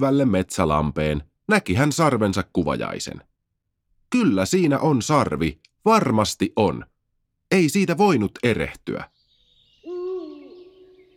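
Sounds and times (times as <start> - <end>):
speech: 0.0 - 3.3, 4.1 - 6.9, 7.5 - 9.1
owl hooting: 9.1 - 11.1.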